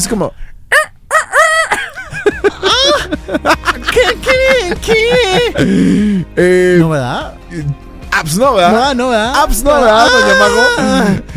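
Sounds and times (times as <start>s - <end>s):
speech: 0.0s - 0.6s, 4.3s - 11.3s
person imitating a rooster crowing: 0.7s - 1.8s
laughter: 1.1s - 6.1s, 9.8s - 11.3s.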